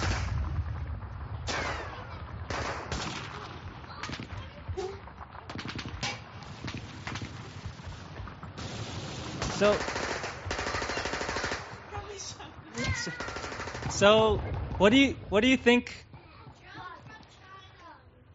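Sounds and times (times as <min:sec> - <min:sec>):
constant low rumble: 0:00.0 - 0:10.6, 0:13.3 - 0:16.1
loud gunfire in bursts and rapid volleys: 0:00.0 - 0:14.8
speech: 0:09.6 - 0:10.0, 0:14.0 - 0:16.0.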